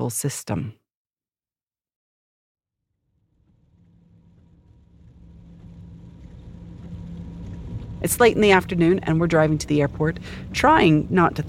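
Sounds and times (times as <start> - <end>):
speech: 0.1 - 0.8, 8.0 - 11.4
car driving along a highway: 3.0 - 11.4
heavy rain from afternoon storm drumming on car windscreen: 3.4 - 11.4.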